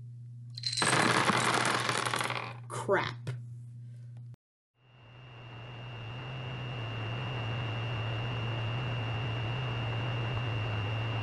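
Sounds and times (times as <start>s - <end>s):
steady low hum: 0.0s - 0.8s, 2.4s - 11.2s
dice dropping and scattering in a rattling clatter: 0.6s - 2.5s
speech: 2.9s - 3.2s.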